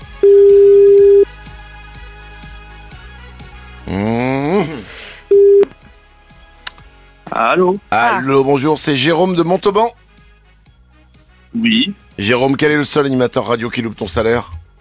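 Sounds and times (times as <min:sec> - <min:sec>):
low music on morning radio: 0:00.0 - 0:14.7
telephone ringing during live radio broadcast: 0:00.2 - 0:01.3, 0:05.3 - 0:05.7
speech: 0:07.5 - 0:10.0, 0:11.6 - 0:14.6.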